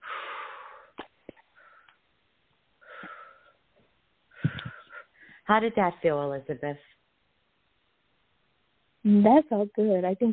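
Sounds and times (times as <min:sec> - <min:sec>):
deep deliberate breaths: 0:00.0 - 0:02.1, 0:02.8 - 0:03.7, 0:04.3 - 0:05.5
speech: 0:05.5 - 0:06.9, 0:09.2 - 0:10.3.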